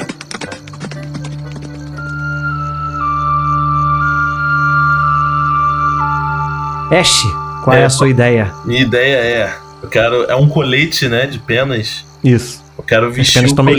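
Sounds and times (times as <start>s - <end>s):
two horses galloping: 0.0s - 2.5s
steady sustained musical drone: 0.0s - 13.7s
speech: 6.9s - 13.7s.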